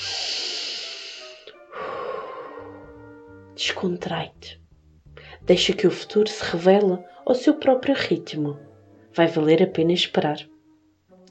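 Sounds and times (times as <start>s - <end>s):
slow breathing in and out during a guided relaxation: 0.0s - 3.3s, 5.1s - 5.4s
speech: 3.6s - 4.6s, 5.5s - 10.5s.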